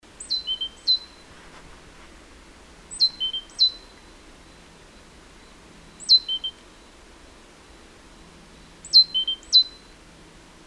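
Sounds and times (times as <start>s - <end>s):
faint background hiss: 0.0s - 10.6s
Great tit Parus major calls sliding into a level whistle: 0.2s - 1.2s, 2.9s - 4.6s, 6.0s - 6.6s, 8.8s - 9.9s.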